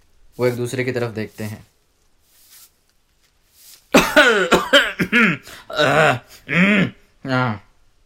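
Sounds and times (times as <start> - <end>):
speech: 0.4 - 1.7, 4.3 - 7.6
voice imitating harsh raspy coughs of an old man: 3.9 - 7.0
throat-clearing rasps: 4.0 - 7.7.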